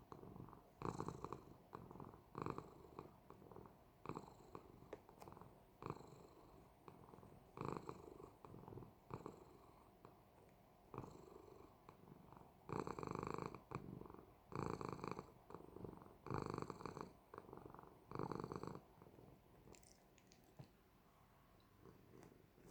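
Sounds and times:
cat purring: 0.0 - 22.6
faint clicks: 19.6 - 20.8.

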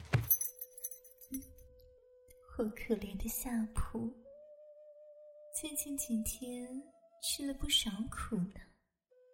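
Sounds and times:
bunch of keys jangling: 0.2 - 1.6
speech: 2.6 - 4.2, 5.6 - 8.7.

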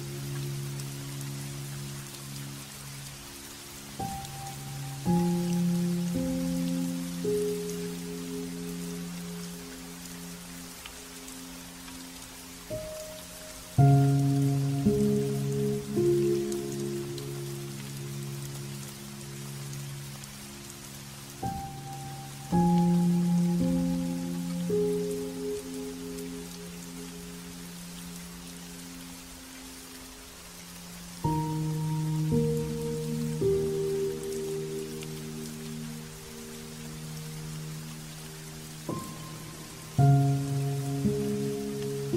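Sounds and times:
soft piano playing: 0.0 - 42.1
steady light rain by a lake: 0.0 - 42.1.

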